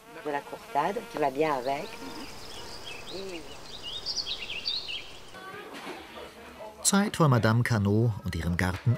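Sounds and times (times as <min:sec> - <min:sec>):
honeybees buzzing in a garden: 0:00.0 - 0:07.0
light bird chirps: 0:00.1 - 0:06.8
speech: 0:00.2 - 0:02.4, 0:03.1 - 0:03.6, 0:06.8 - 0:08.9.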